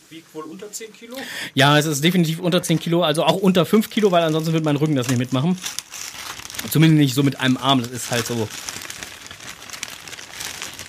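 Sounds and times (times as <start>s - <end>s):
speech: 0.1s - 5.9s, 6.6s - 8.8s
wrapping paper crinkling and rustling as a present is unpacked: 3.3s - 10.8s.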